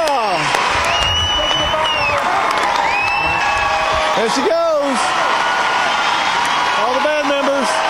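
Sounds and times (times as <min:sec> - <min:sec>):
whistles from concert crowd: 0:00.0 - 0:03.5
large concert crowd cheering: 0:00.0 - 0:07.8
steady applause: 0:00.0 - 0:07.8
speech: 0:04.2 - 0:05.1.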